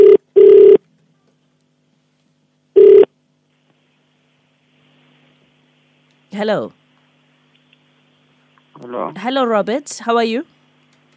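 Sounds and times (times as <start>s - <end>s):
phone line ringback tone on an outgoing call: 0.0s - 0.8s, 2.8s - 3.1s
speech: 6.4s - 6.8s, 8.8s - 10.6s.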